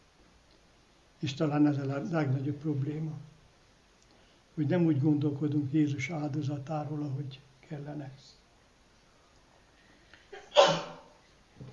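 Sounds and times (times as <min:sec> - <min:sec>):
speech: 0:01.2 - 0:03.3, 0:04.6 - 0:08.4
sneeze: 0:10.4 - 0:11.2.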